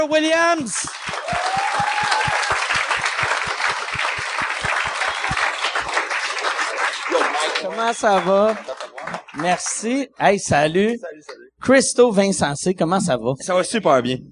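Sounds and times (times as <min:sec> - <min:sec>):
speech: 0:00.0 - 0:02.2, 0:07.6 - 0:08.7, 0:09.4 - 0:14.3
audience applause welcoming guests onto a show: 0:00.7 - 0:09.8
steady thumping beat: 0:00.8 - 0:05.9
whistle or cheer: 0:01.1 - 0:02.7, 0:04.6 - 0:06.0.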